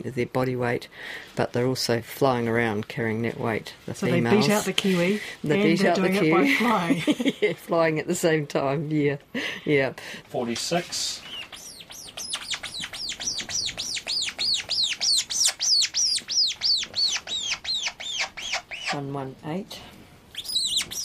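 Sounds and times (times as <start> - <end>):
speech: 0.0 - 11.4, 19.0 - 19.9
seabird chicks peeping while being fed: 11.0 - 19.0, 20.4 - 21.0
lower buzzy seabird chick squawk: 11.2 - 19.1, 20.3 - 21.0.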